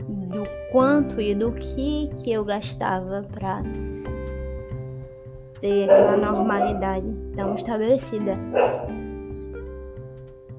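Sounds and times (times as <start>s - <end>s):
speech: 0.7s - 4.0s, 5.6s - 9.0s
dog barking: 5.7s - 7.8s, 8.4s - 9.0s.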